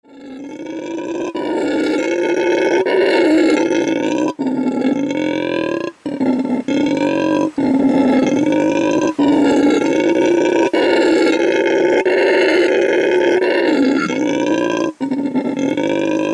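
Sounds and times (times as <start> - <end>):
howler monkey: 0.0 - 16.3.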